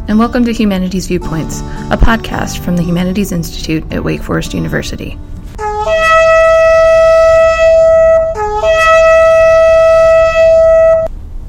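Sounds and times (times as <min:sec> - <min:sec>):
speech: 0:00.1 - 0:06.1
shofar horn blown during Rosh Hashanah and Yom Kippur services: 0:05.6 - 0:11.1.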